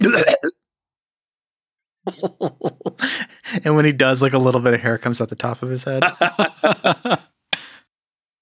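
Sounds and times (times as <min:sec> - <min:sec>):
voice imitating hacking up a hairball: 0:00.0 - 0:00.6
laughter: 0:02.1 - 0:03.4, 0:06.0 - 0:07.3
speech: 0:02.2 - 0:07.2.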